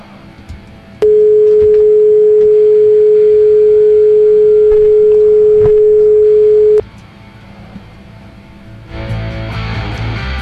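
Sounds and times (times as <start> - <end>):
steady single-pitch telephone line tone while placing a call: 1.0 - 6.8.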